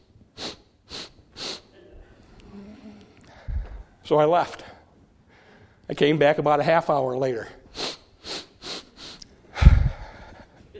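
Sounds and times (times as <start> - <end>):
person imitating a crying child sniffling: 0.3 - 3.8, 7.7 - 10.7
speech: 4.1 - 4.6, 5.9 - 7.6.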